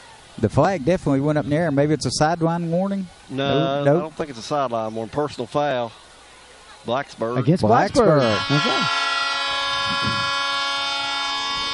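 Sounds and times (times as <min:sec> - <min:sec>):
speech: 0:00.4 - 0:06.0, 0:06.8 - 0:09.0, 0:09.9 - 0:10.4
train horn blaring at a football game: 0:07.7 - 0:11.7.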